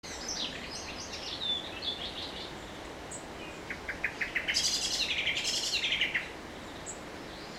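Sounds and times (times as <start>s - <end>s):
soft background hiss: 0.1s - 7.5s
common blackbird Turdus merula thin high notes and rattling chatter: 3.7s - 6.3s.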